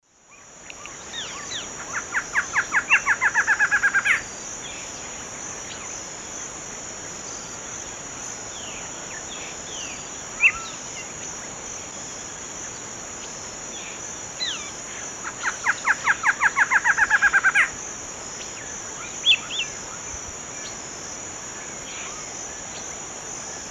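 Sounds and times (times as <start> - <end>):
male Thamnophilus doliatus singing: 0.3 - 6.0, 8.5 - 11.4, 12.7 - 17.7, 18.4 - 20.0.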